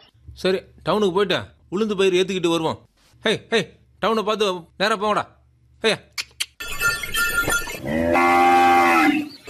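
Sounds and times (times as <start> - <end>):
speech: 0.4 - 6.1
cattle pulling a bullock cart loaded with black gram mooing: 7.8 - 9.3.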